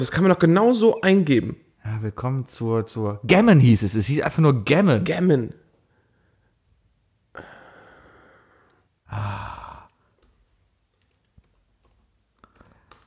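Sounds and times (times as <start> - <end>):
speech: 0.0 - 5.6, 9.1 - 9.5
loud breathy exhale: 7.4 - 10.0
typing on a computer keyboard: 10.2 - 13.0.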